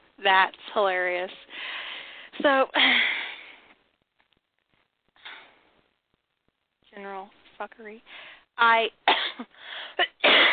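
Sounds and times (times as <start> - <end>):
speech: 0.2 - 1.8, 2.4 - 3.2, 7.0 - 10.5
person coughing: 9.1 - 10.5.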